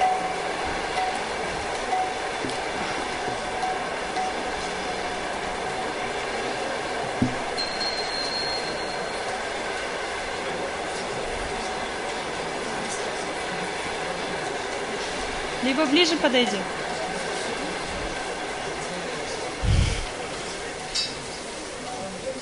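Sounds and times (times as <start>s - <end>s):
passing train with rolling wheels and cars rumbling: 0.0s - 22.3s
speech: 15.7s - 16.8s.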